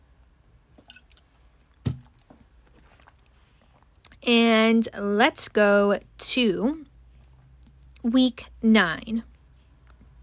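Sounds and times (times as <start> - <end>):
person gulping water: 0.8 - 1.2, 2.0 - 4.2
wet mouth noises while drinking water: 0.8 - 1.3, 2.6 - 4.2
speech: 4.3 - 6.9, 8.0 - 9.3.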